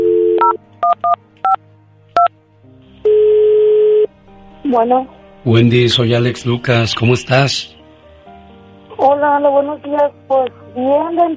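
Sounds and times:
telephone dial tone: 0.0 - 1.2
steady telephone ringing tone: 3.1 - 4.1
speech: 4.7 - 7.8, 9.0 - 11.3.

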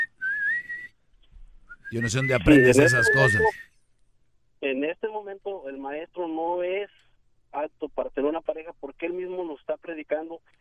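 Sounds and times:
person whistling a single rising note: 0.0 - 1.0, 1.7 - 3.8
speech: 1.9 - 3.7, 4.6 - 10.5.

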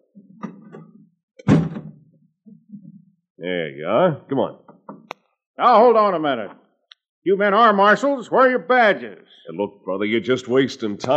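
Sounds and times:
door opening with a solid thunk: 0.4 - 2.1
speech: 3.4 - 4.6, 5.6 - 6.6, 7.2 - 11.1.

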